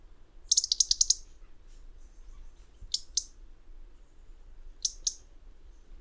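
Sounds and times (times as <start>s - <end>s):
soft low background hum: 0.0s - 5.9s
European robin Erithacus rubecula dry ticking calls: 0.4s - 3.4s, 4.7s - 5.8s.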